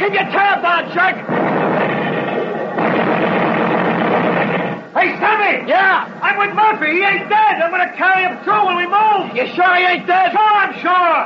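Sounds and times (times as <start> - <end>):
speech: 0.0 - 1.6, 5.4 - 11.2
navy artillery barrage of heavy gunfire and blasts: 1.1 - 4.9.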